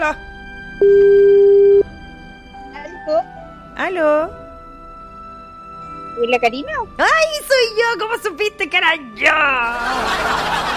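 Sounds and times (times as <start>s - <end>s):
speech: 0.0s - 1.0s, 6.2s - 10.7s
steady telephone line tone during a call: 0.8s - 1.9s
laughter: 9.6s - 10.7s.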